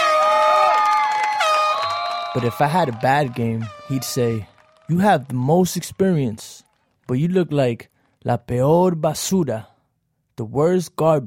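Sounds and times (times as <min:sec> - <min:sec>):
crowd cheering and shouting: 0:00.0 - 0:08.3
loud blaring air horn blast: 0:01.2 - 0:02.6
speech: 0:02.3 - 0:09.7, 0:10.4 - 0:11.2.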